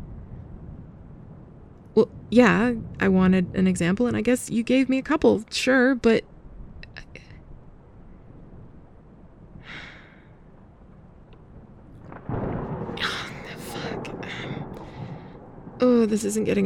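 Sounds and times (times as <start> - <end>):
low continuous rumble of storm thunder: 0.0 - 16.6
speech: 2.0 - 6.3, 16.0 - 16.6
breathy sighs or gasps: 9.6 - 10.4, 14.2 - 15.4.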